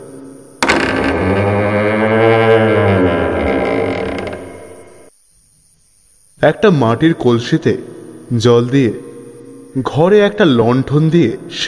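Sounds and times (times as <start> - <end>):
wooden door creaking open in a room upstairs: 0.6 - 5.1
speech: 6.4 - 9.0, 9.8 - 11.6.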